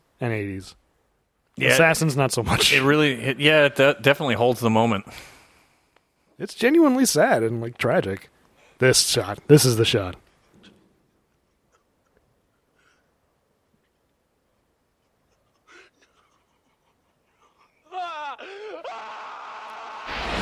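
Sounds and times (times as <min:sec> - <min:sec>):
speech: 0:00.2 - 0:00.8, 0:01.6 - 0:05.3, 0:06.4 - 0:10.2
man screaming in rage: 0:17.8 - 0:20.1.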